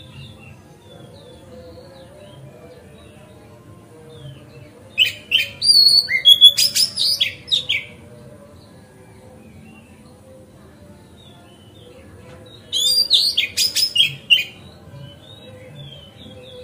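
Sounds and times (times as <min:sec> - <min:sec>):
Oriental magpie-robin song of sweet whistles and sharp chips: 0:05.0 - 0:07.9, 0:12.8 - 0:14.6
speech: 0:05.8 - 0:07.7.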